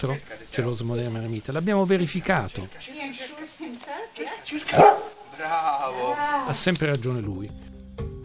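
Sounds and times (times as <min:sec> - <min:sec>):
speech: 0:00.0 - 0:08.1
sharp dog bark at a tree trunk: 0:04.7 - 0:05.2.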